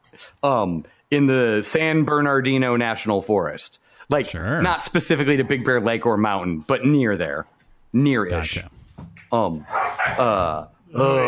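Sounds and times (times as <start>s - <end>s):
speech: 0.1s - 11.2s
dogs barking in whiny agitated tonal bursts: 9.7s - 10.4s.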